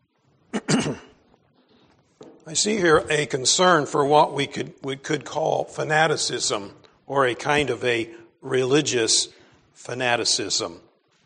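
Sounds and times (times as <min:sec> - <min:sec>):
man clearing throat: 0:00.5 - 0:01.2
speech: 0:00.8 - 0:01.1, 0:02.5 - 0:10.9.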